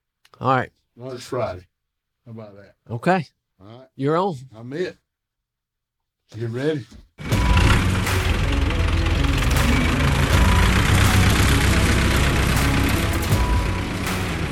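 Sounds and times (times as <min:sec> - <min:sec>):
speech: 0:00.4 - 0:01.7, 0:02.3 - 0:05.0, 0:06.3 - 0:07.3
tractor engine idling: 0:07.2 - 0:14.5.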